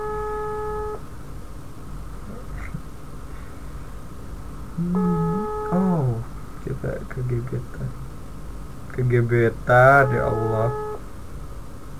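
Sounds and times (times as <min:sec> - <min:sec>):
low hiss: 0:00.0 - 0:11.9
electronic ringback tone of an unanswered outgoing phone call: 0:04.8 - 0:06.1, 0:09.9 - 0:11.0
speech: 0:06.8 - 0:08.0, 0:09.0 - 0:10.8.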